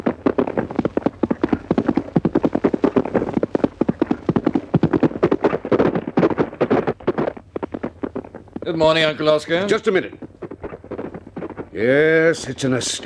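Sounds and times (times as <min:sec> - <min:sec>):
faint low rumble: 0:00.0 - 0:13.0
horse trotting over a track with hooves clip-clopping: 0:00.0 - 0:13.0
speech: 0:08.7 - 0:10.2, 0:11.8 - 0:13.0.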